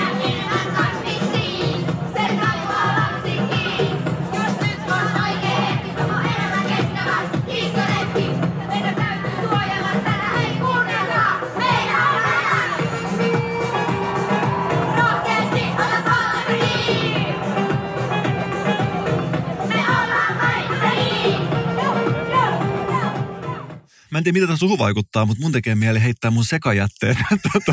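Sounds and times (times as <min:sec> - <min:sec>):
primary schoolchildren performing a climate rap outdoors at a climate march: 0:00.0 - 0:13.4, 0:14.9 - 0:17.4, 0:19.6 - 0:21.5, 0:24.3 - 0:27.7
crowd noise at a climate march: 0:00.0 - 0:27.7
speech: 0:24.2 - 0:27.7
laughter: 0:26.9 - 0:27.7.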